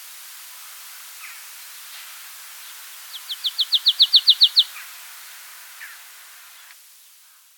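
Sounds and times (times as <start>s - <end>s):
marsh tit Poecile palustris calling: 2.7s - 4.9s.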